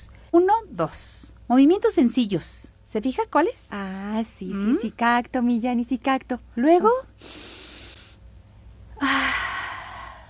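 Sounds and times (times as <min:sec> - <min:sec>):
speech: 0:00.0 - 0:07.5, 0:09.0 - 0:09.3
deep inhalations during a relaxation breathing exercise: 0:07.2 - 0:08.2, 0:09.0 - 0:10.2.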